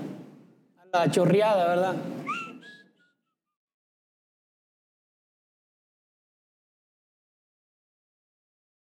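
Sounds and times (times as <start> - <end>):
speech: 0.9 - 2.5
short sharp calling whistle: 2.2 - 3.3.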